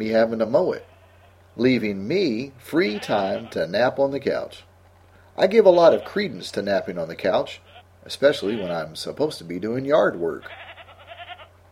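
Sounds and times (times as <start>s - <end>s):
speech: 0.0s - 0.9s, 1.6s - 4.7s, 5.4s - 10.7s
goat bleating: 0.5s - 1.6s, 2.6s - 3.9s, 5.4s - 6.6s, 7.6s - 9.0s, 10.3s - 11.6s.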